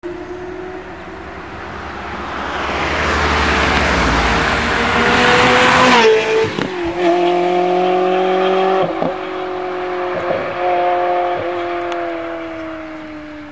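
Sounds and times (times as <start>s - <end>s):
Ferrari 360 passing by: 0.1s - 13.5s.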